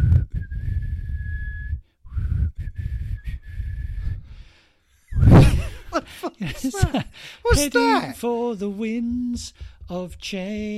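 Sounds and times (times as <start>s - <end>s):
person whistling a short melody in long steady notes: 0.0s - 4.2s
laughter: 5.4s - 8.2s
speech: 6.2s - 10.7s.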